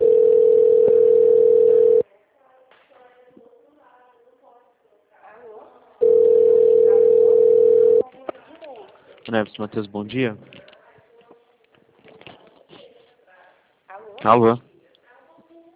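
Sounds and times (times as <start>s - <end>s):
telephone ringback tone as a call connects: 0.0s - 2.0s, 6.0s - 8.0s
speech: 9.3s - 10.6s, 14.2s - 14.7s.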